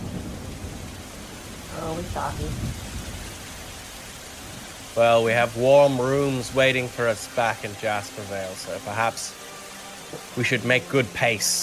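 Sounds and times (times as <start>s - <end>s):
thunderstorm's low rumble: 0.0s - 6.6s
steady rain: 0.0s - 11.6s
speech: 2.0s - 2.9s, 5.0s - 9.4s, 10.1s - 11.6s.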